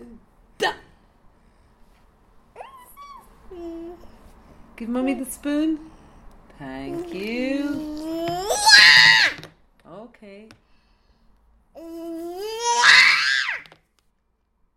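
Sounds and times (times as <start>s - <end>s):
speech: 0.1s - 0.8s, 4.8s - 5.9s, 6.6s - 8.0s, 10.2s - 10.6s
young child screaming high-pitched: 8.0s - 9.4s, 12.4s - 13.6s.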